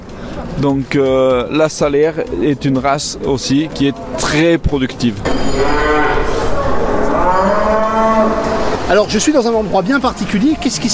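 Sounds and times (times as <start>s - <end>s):
speech: 0.4s - 6.4s, 8.3s - 10.9s
cow mooing at a livestock show: 5.3s - 9.0s
murmuring at a livestock show: 5.4s - 8.9s.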